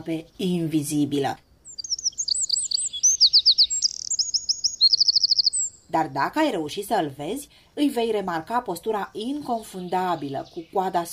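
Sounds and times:
speech: 0:00.0 - 0:01.5, 0:05.9 - 0:11.1
Eurasian wren singing: 0:00.0 - 0:11.1.

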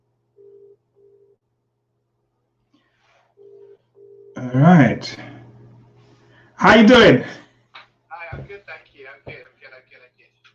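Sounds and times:
low constant hum: 0:00.0 - 0:10.5
video call ringing tone beeps from a phone: 0:03.4 - 0:04.4
speech: 0:04.5 - 0:05.3, 0:06.6 - 0:07.4.

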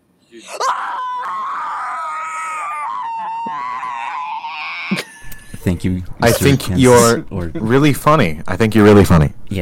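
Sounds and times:
speech: 0:00.3 - 0:00.8, 0:05.6 - 0:09.6
person screaming in a voice message: 0:00.4 - 0:05.2.

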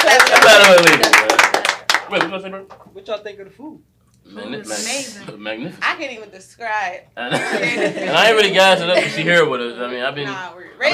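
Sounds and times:
small group clapping for the guests: 0:00.0 - 0:02.9
speech: 0:00.6 - 0:01.1, 0:02.3 - 0:10.9
laughter: 0:07.2 - 0:09.6.

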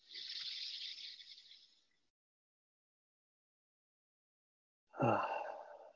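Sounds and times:
group breathing in and out during a guided breathing exercise: 0:05.0 - 0:05.9.

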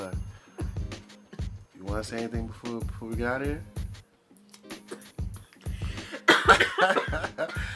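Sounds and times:
speech: 0:01.8 - 0:03.8, 0:06.8 - 0:07.6
woman coughing in a hacking fit after smoking: 0:06.2 - 0:07.6.

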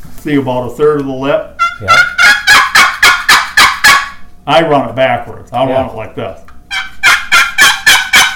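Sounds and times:
speech: 0:00.2 - 0:02.2, 0:04.5 - 0:06.5
turkey box call yelps: 0:01.6 - 0:04.3, 0:06.7 - 0:08.3.

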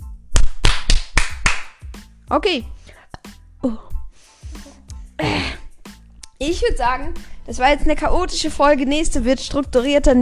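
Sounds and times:
hands clapping: 0:00.4 - 0:02.0
speech: 0:02.3 - 0:02.8, 0:03.6 - 0:03.9, 0:06.4 - 0:10.2.

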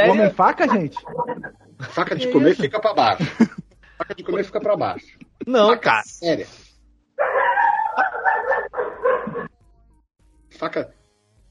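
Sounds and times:
laughter: 0:00.0 - 0:05.4
speech: 0:00.0 - 0:06.6, 0:10.5 - 0:11.0
dog barking loudly because of fireworks: 0:07.2 - 0:09.5.

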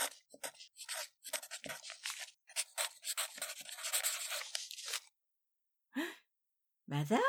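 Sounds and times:
pen scratching across paper in quick strokes: 0:00.0 - 0:05.1.

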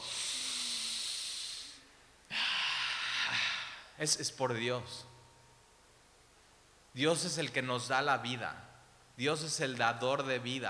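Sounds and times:
person breathing loudly and deliberately: 0:00.0 - 0:04.0
speech: 0:04.0 - 0:05.1, 0:07.0 - 0:10.6.

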